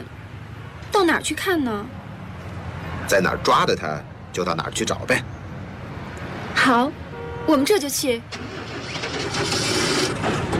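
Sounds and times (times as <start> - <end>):
speech: 1.1 - 2.0, 3.1 - 5.4, 6.6 - 10.0
motorcycle engine starting up and running: 8.3 - 10.5.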